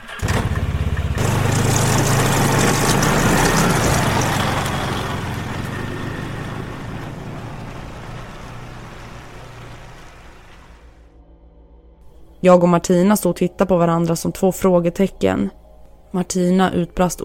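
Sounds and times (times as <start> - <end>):
snowmobile engine starting and speeding away: 0.0 - 11.0
speech: 12.4 - 17.2.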